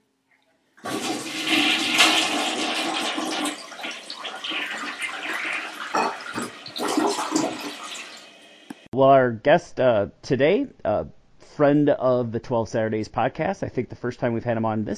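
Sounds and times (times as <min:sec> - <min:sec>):
gurgling and swirling toilet refill water: 0:00.8 - 0:08.6
toilet flushing: 0:00.8 - 0:08.9
speech: 0:09.0 - 0:14.9.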